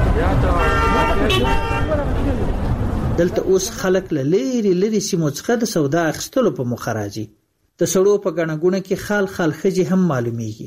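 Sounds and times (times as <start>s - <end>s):
cars and rickshaws rolling past on a busy market street: 0.0s - 4.4s
speech: 0.2s - 10.6s.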